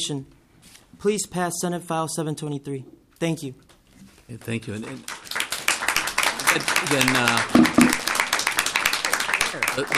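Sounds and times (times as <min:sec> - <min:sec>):
speech: 0:00.0 - 0:00.4, 0:01.0 - 0:03.7, 0:04.3 - 0:05.2, 0:06.6 - 0:08.0, 0:09.5 - 0:09.9
audience applause at a hearing on a Senate bill: 0:04.7 - 0:09.9.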